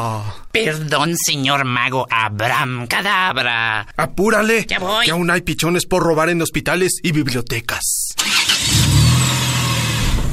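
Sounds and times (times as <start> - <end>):
speech: 0.0 - 8.8
car engine starting and driving away: 8.2 - 10.3.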